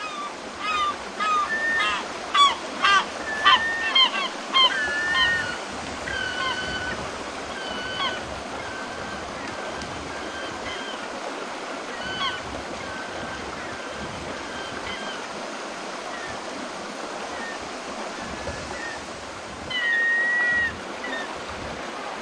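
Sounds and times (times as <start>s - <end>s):
seagulls calling at the seaside: 0.0s - 11.1s, 11.9s - 15.3s, 18.2s - 21.4s
steady wash of sea: 0.0s - 22.2s.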